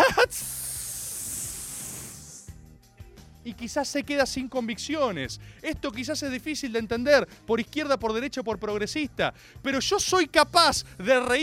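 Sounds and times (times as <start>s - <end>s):
voice imitating a helium balloon deflating: 0.0s - 2.5s
speech: 3.4s - 11.4s.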